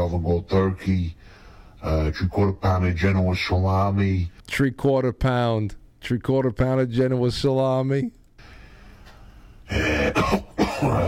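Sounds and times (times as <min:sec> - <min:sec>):
speech: 0:00.1 - 0:08.2, 0:09.7 - 0:11.0
harsh raspy cough: 0:09.7 - 0:11.0.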